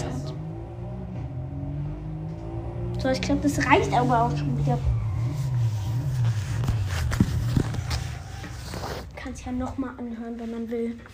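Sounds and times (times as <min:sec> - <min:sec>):
Mercedes car engine revving in a racing game: 0:00.0 - 0:10.5
speech: 0:03.0 - 0:05.0, 0:09.4 - 0:11.1.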